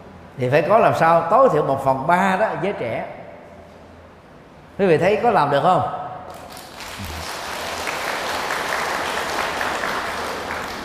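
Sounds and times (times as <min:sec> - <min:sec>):
speech: 0:00.4 - 0:03.2, 0:04.8 - 0:06.4
audience applause at a community gathering: 0:06.7 - 0:10.8.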